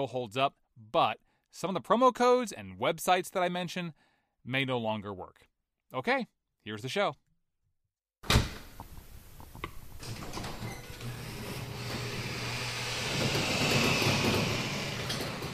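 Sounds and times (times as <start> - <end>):
speech: 0.0 - 7.2
garage door rolling up: 9.9 - 15.5.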